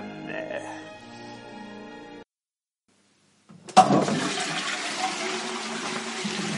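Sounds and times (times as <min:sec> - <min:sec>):
toilet flushing: 0:03.7 - 0:06.5.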